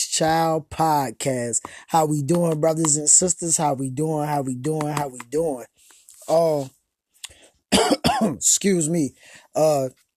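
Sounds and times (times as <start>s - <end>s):
speech: 0.2s - 6.8s, 7.7s - 10.0s
voiced throat clearing: 7.7s - 8.4s
person coughing: 7.7s - 8.5s.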